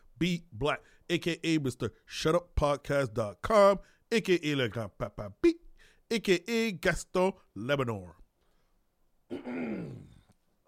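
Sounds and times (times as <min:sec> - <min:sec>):
speech: 0:00.2 - 0:08.2, 0:09.3 - 0:10.1
throat clearing: 0:09.3 - 0:10.4.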